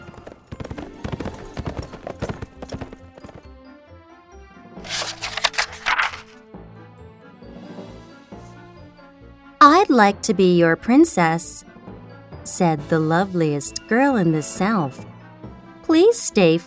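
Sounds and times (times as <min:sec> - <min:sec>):
horse hooves clip-clopping while riding: 0:00.0 - 0:03.6
speech: 0:09.9 - 0:11.7, 0:12.6 - 0:15.1, 0:15.9 - 0:16.6.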